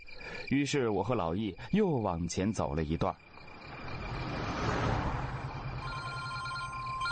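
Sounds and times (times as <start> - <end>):
speech: 0.5 - 3.3
steady outdoor traffic noise: 2.5 - 7.0
phone ringing: 5.8 - 7.0.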